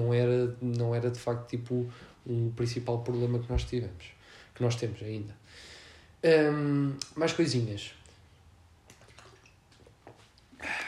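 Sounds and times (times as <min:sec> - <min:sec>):
speech: 0:00.0 - 0:08.0
quiet sips of water: 0:08.9 - 0:10.8
soft swallow: 0:09.0 - 0:10.8
brief louder breathy gush as the drinker pulls away: 0:10.6 - 0:10.8.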